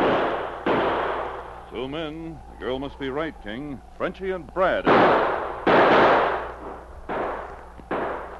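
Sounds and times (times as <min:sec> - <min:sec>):
gunshots in a gunfight on a snowy wooded trail: 0:00.0 - 0:01.6, 0:04.8 - 0:08.3
speech: 0:01.8 - 0:05.4.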